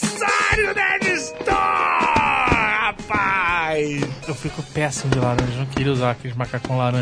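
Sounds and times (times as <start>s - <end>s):
man letting out strained held-back yells: 0.2s - 3.8s
speech: 4.8s - 6.9s.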